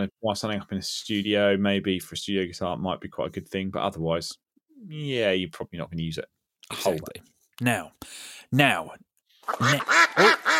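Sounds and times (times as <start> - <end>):
speech: 0.0 - 10.5
cartoonish duck quack sound effect: 9.5 - 10.5.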